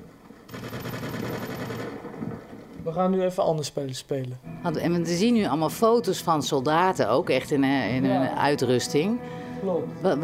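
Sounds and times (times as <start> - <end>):
rapid gunfire in a video game: 0.5 - 2.7
speech: 2.8 - 10.2.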